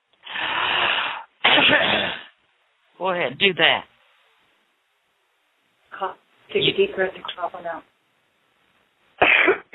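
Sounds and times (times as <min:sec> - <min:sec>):
person coughing harshly: 0:01.4 - 0:02.3, 0:09.2 - 0:09.7
speech: 0:03.0 - 0:03.9, 0:06.0 - 0:07.9.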